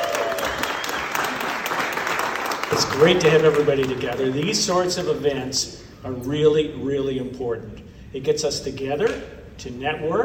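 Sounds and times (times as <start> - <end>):
audience applause: 0.0 - 4.6
speech: 2.7 - 10.2.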